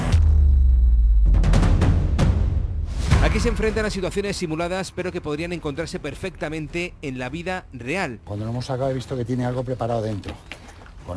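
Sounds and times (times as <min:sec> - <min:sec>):
contained explosion during bomb disposal training: 0:00.0 - 0:05.6
speech: 0:03.4 - 0:11.1.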